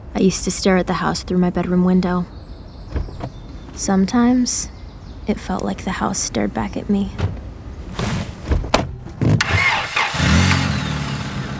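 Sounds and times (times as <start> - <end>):
car engine starting as the car pulls away from a family house: 0.0 - 11.5
speech: 0.2 - 3.1, 3.8 - 7.3
knocks and clunks: 1.5 - 10.0.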